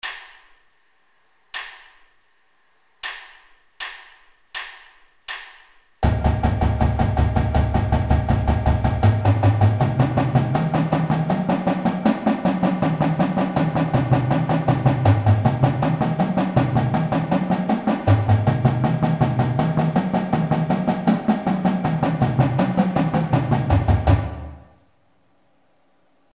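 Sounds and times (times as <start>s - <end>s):
marching drums playing slow legato warm-ups: 6.0s - 24.7s.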